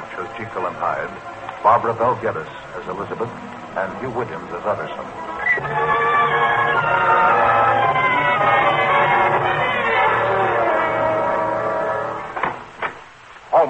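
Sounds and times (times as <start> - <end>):
speech: 0.4 - 7.5
wedding bells pealing: 2.6 - 12.4.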